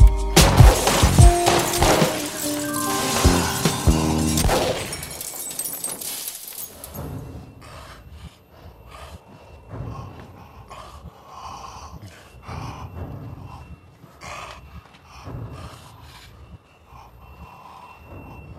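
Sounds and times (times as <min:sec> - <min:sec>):
loud gunshots: 0:00.4 - 0:05.0
ringing metallic backdrop: 0:01.0 - 0:07.6
heavy ragged breathing with huffing breaths and gasps: 0:05.0 - 0:18.5.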